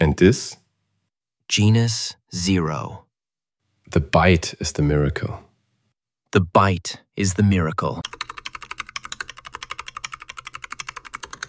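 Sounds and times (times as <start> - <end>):
speech: 0.0 - 0.6, 1.5 - 3.0, 3.9 - 5.5, 6.3 - 8.2
typing on a keyboard: 8.0 - 11.4.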